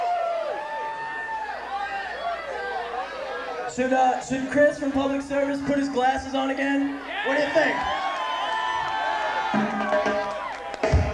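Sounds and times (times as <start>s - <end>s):
crowd cheering and whooping: 0.0s - 3.6s, 7.0s - 11.1s
speech: 3.8s - 8.0s.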